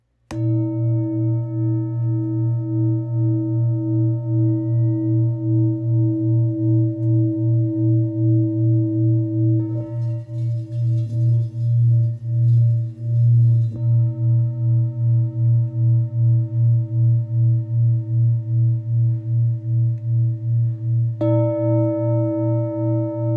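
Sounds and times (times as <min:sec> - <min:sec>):
2.87 kg singing bowl: 0:00.3 - 0:23.3.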